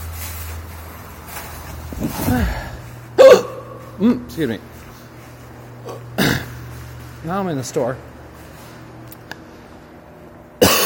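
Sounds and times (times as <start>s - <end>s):
speech: 2.0s - 2.7s, 4.0s - 4.7s, 7.2s - 8.1s
soft breathy vocal sounds: 2.3s - 2.9s
person hiccuping: 3.2s - 4.2s, 5.8s - 6.6s, 10.6s - 10.8s.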